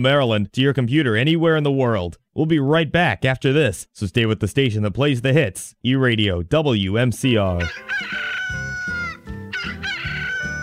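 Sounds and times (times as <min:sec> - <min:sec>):
speech: 0:00.0 - 0:08.6
rooster crowing at dawn: 0:07.6 - 0:10.6.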